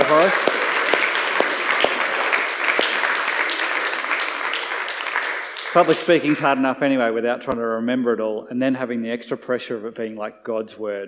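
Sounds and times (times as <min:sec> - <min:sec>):
audience applause: 0:00.0 - 0:06.4
sharp individual claps: 0:00.0 - 0:06.4
speech: 0:00.1 - 0:00.5, 0:05.8 - 0:11.0.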